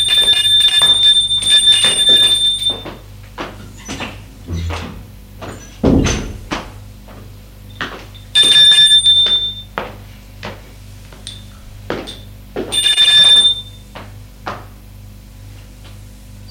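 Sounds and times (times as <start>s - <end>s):
doorbell ringing at the door of a home in the evening: 0.0s - 3.1s, 8.2s - 9.8s, 12.7s - 13.9s.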